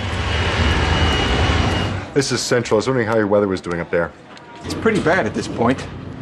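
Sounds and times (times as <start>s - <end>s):
jet airliner engines roaring on final landing approach in rain and wind: 0.0s - 2.2s
speech: 2.2s - 6.0s.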